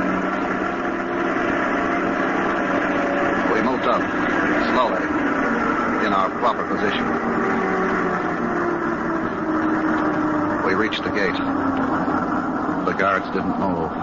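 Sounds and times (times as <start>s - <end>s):
truck in a convoy idling and pulling forward: 0.0s - 14.0s
speech: 6.7s - 7.5s, 10.8s - 11.8s, 13.0s - 14.0s.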